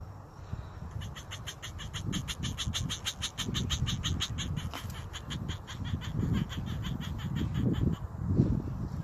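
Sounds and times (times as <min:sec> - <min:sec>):
male crested gecko mating calls chirping: 0:00.9 - 0:08.0.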